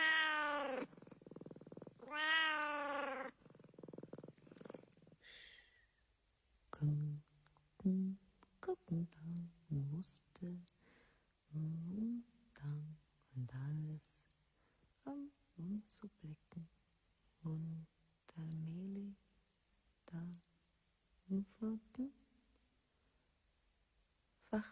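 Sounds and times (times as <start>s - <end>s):
cat meowing: 0.0s - 0.9s, 2.0s - 3.3s
person speaking softly: 6.7s - 10.8s, 11.5s - 14.4s, 15.0s - 16.7s, 17.4s - 19.2s, 20.0s - 20.5s, 21.2s - 22.2s, 24.4s - 24.7s.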